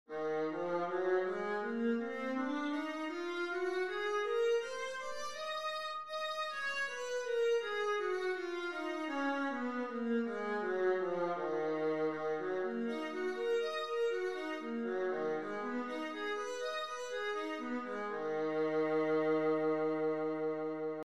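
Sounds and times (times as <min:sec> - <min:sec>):
viola playing E flat minor scales: 0:00.1 - 0:21.0.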